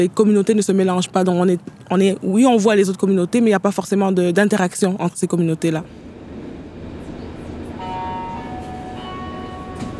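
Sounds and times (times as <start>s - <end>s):
speech: 0.0s - 6.1s
metro train rumbling in front of a metro station: 5.7s - 9.9s.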